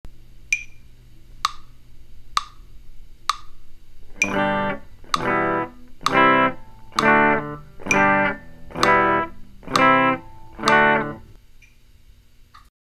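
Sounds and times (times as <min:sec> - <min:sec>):
guitar chords switching in quarter notes: 0:04.1 - 0:11.4.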